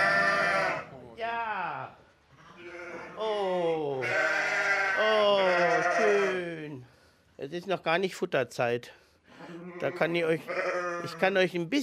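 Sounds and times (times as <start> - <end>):
sheep bleating in a small stall at the edge of monastery fields: 0.0 - 0.9, 2.4 - 3.3, 4.0 - 6.6, 9.4 - 11.4
speech: 7.6 - 11.8.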